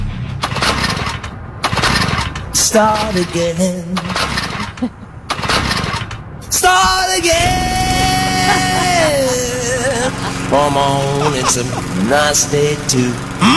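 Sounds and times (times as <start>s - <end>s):
small lawnmower engine sputtering and failing to start: 0.4s - 13.5s
speech: 2.7s - 5.0s, 6.6s - 7.8s, 8.5s - 13.5s
laughter: 4.6s - 5.2s, 7.9s - 12.5s.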